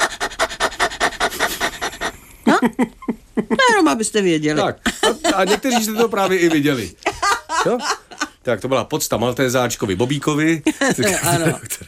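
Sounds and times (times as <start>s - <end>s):
person imitating a dog's panting as a breathing exercise: 0.0s - 2.2s
speech: 2.6s - 7.0s, 7.6s - 11.8s
laughter: 4.6s - 8.4s, 10.6s - 11.8s.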